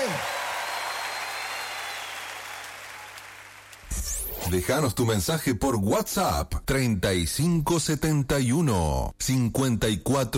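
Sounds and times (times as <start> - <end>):
audience applause: 0.0 - 3.9
speech: 4.5 - 10.3.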